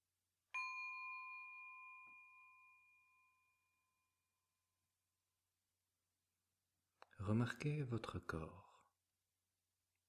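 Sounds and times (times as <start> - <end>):
meditation bell struck for a seated meditation exercise: 0.5 - 4.7
speech: 7.2 - 8.7.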